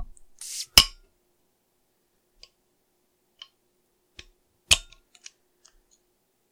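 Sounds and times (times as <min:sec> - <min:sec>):
stout beer bottle fizzing hiss: 0:00.4 - 0:00.9.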